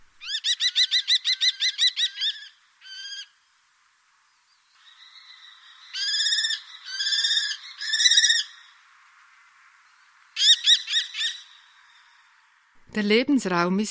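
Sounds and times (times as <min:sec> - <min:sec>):
common kestrel calling in shrill trills: 0:00.2 - 0:03.3, 0:04.8 - 0:08.8, 0:10.4 - 0:11.7
speech: 0:13.0 - 0:13.8.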